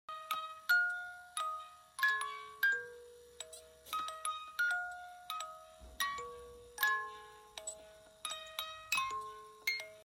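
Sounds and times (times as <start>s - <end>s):
music box being wound up: 0.7s - 10.0s.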